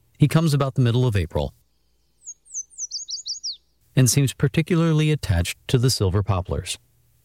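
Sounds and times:
yellow warbler song of thin sharp sweet notes: 0:00.0 - 0:04.4
faint low hum: 0:00.0 - 0:07.2
speech: 0:00.2 - 0:01.6, 0:04.0 - 0:06.9.

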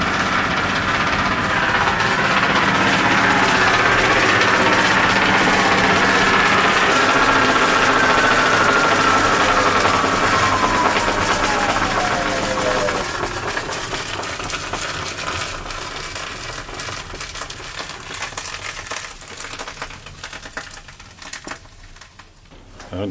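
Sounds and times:
motor-driven belt drive of a mill running: 0:00.0 - 0:14.2
belt drive whining tone sliding downward: 0:00.0 - 0:14.8.

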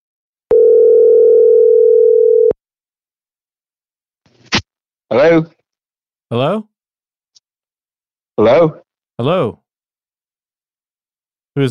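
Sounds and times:
steady ringback tone of an outgoing phone call: 0:00.5 - 0:02.6
speech: 0:05.1 - 0:05.6, 0:06.3 - 0:06.7, 0:08.4 - 0:09.6.

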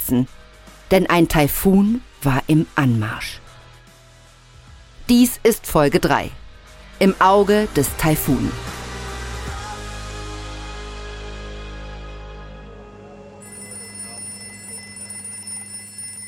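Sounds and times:
speech: 0:00.1 - 0:03.4, 0:05.1 - 0:06.4, 0:07.0 - 0:08.7
telephone ringing in the Coast Guard command center in Juneau Alaska: 0:13.4 - 0:16.2.

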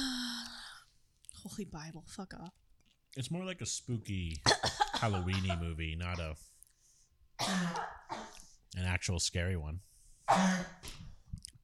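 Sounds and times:
speech: 0:01.4 - 0:02.6, 0:03.2 - 0:06.5, 0:07.4 - 0:08.0, 0:08.7 - 0:11.0
person coughing: 0:04.4 - 0:06.3, 0:07.4 - 0:08.5, 0:10.3 - 0:10.9.

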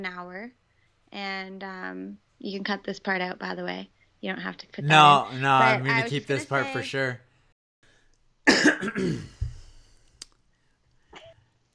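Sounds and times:
speech: 0:00.0 - 0:07.2, 0:08.6 - 0:09.3
loud harsh rasping cough: 0:08.5 - 0:09.4
faint brief throat clearing: 0:08.5 - 0:09.5.

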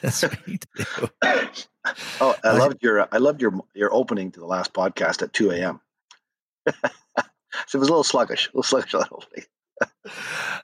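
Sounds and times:
dry coughs: 0:00.0 - 0:01.6
laughter: 0:00.0 - 0:02.7, 0:06.7 - 0:07.7
speech: 0:00.0 - 0:05.8, 0:06.6 - 0:10.6
throat clearing: 0:00.1 - 0:01.6.

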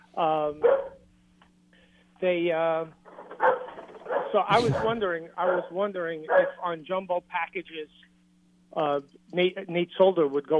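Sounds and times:
low steady hum: 0:00.0 - 0:10.5
speech: 0:00.2 - 0:00.9, 0:02.2 - 0:03.6, 0:04.3 - 0:08.1, 0:08.7 - 0:10.5
dog barking: 0:00.6 - 0:01.0, 0:03.4 - 0:04.4, 0:06.3 - 0:06.6.

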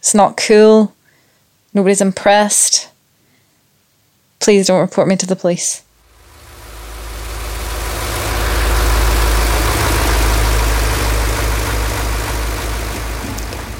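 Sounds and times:
speech: 0:00.0 - 0:01.0, 0:01.7 - 0:02.9, 0:04.4 - 0:05.9
engine idling with deep low rumble: 0:06.0 - 0:13.7.

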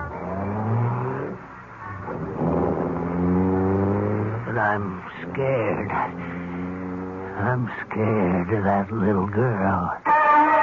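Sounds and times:
car engine revving as the car drives off: 0:00.0 - 0:09.6
speech: 0:04.7 - 0:06.4, 0:07.4 - 0:10.1.

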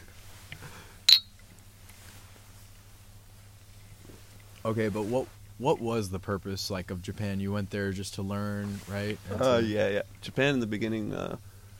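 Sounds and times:
quiet low hum: 0:00.0 - 0:11.7
glasses clinking in a toast: 0:01.1 - 0:01.4
speech: 0:04.7 - 0:11.5.

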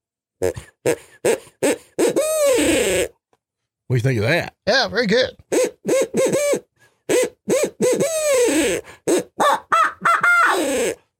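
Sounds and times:
speech: 0:00.4 - 0:03.1, 0:03.9 - 0:05.7
hunter blowing an owl call: 0:01.2 - 0:03.1, 0:05.5 - 0:11.0.

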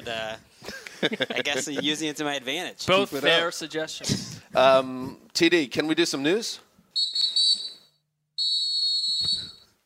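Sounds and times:
speech: 0:00.0 - 0:07.2
referee's final whistle blasts: 0:07.0 - 0:09.7.

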